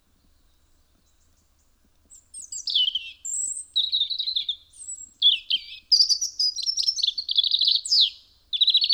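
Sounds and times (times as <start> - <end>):
European robin singing, Erithacus rubecula: 2.1 - 8.9.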